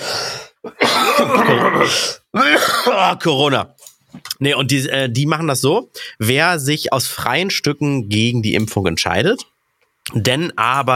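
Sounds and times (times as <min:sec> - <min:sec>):
person clearing throat: 0:00.6 - 0:03.2
speech: 0:01.2 - 0:09.5, 0:10.1 - 0:10.9.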